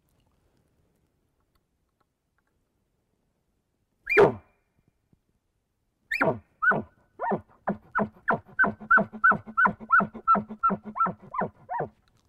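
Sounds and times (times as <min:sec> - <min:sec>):
person imitating a bull elk bark: 0:04.1 - 0:04.4, 0:06.1 - 0:11.9.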